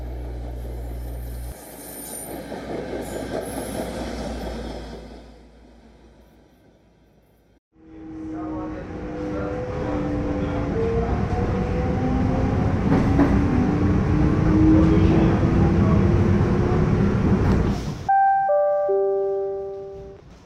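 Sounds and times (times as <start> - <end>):
train rolling along the rails: 0.0 - 7.3, 8.0 - 18.1
electronic chime: 18.1 - 20.2.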